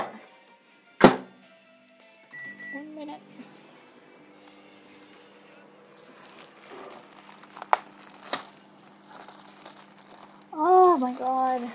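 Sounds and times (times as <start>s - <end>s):
toilet paper crinkling and rustling: 5.8s - 11.7s.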